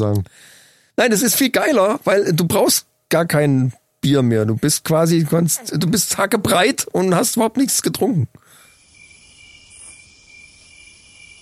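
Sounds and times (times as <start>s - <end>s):
speech: 0.0s - 8.4s
crickets chirping: 8.4s - 11.4s.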